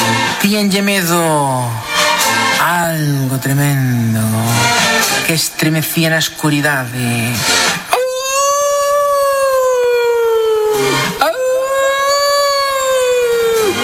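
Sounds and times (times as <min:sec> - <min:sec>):
speech: 0:00.4 - 0:01.9, 0:02.6 - 0:07.7
wolves howling: 0:07.9 - 0:13.8.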